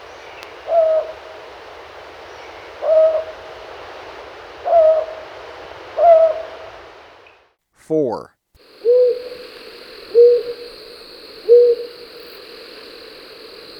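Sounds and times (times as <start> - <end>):
Rufous-banded Owl hooting in Ecuador: 0.0 - 1.5, 2.7 - 3.5, 4.6 - 5.3, 6.0 - 6.8, 8.6 - 13.7
faint steady hiss: 0.0 - 13.7
speech: 7.9 - 8.3.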